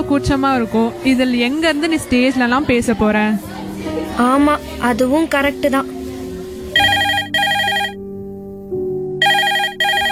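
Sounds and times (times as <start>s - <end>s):
speech: 0.1s - 6.0s
mobile phone ringtone for incoming call: 6.8s - 8.0s, 9.2s - 10.0s.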